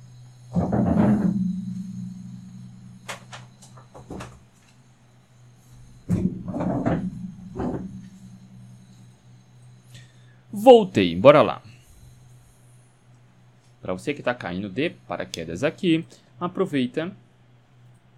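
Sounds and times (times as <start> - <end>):
steady low hum: 0.0 - 15.8
door creaking and scraping while being closed: 0.5 - 4.7, 5.6 - 9.3
speech: 10.6 - 11.7, 13.9 - 17.2.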